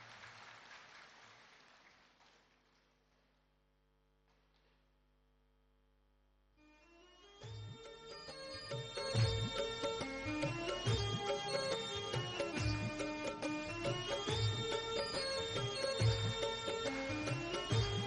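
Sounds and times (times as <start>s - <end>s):
crowd clapping: 0.0s - 3.4s
music: 6.6s - 18.0s.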